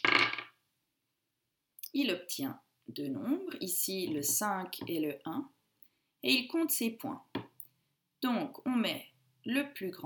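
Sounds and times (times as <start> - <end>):
two dice rolled on a hard surface: 0.0 - 0.6
speech: 2.0 - 5.6, 6.2 - 7.5, 8.2 - 10.0.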